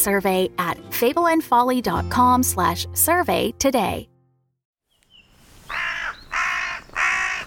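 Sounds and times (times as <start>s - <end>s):
speech: 0.0s - 4.1s
crow cawing: 5.6s - 7.4s.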